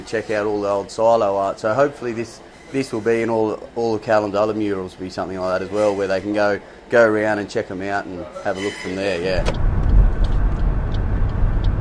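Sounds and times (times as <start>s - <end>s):
speech: 0.0s - 9.6s
moving car engine and tyre drone: 9.3s - 11.8s.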